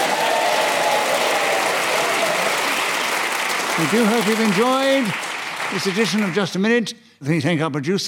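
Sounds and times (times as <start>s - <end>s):
studio audience applause: 0.0s - 6.7s
speech: 3.8s - 8.0s.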